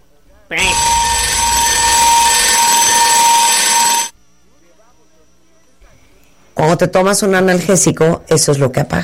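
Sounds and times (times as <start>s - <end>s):
harsh electronic alarm blaring: 0.6s - 4.2s
speech: 6.7s - 9.0s.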